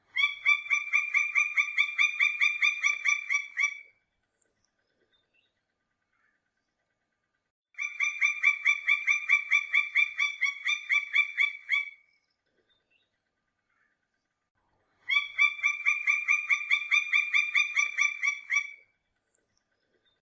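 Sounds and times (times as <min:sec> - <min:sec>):
pelatuk ayam woodpecker: 0:00.1 - 0:07.2, 0:07.8 - 0:14.4, 0:15.0 - 0:20.1.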